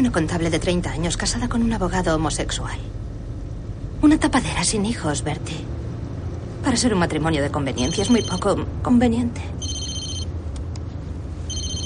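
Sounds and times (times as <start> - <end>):
speech: 0.0 - 3.0, 4.0 - 5.8, 6.6 - 9.8
steady low rumble: 0.0 - 7.6
car telephone ringing with bright electronic trilling: 7.8 - 8.5, 9.6 - 10.3, 11.5 - 11.8.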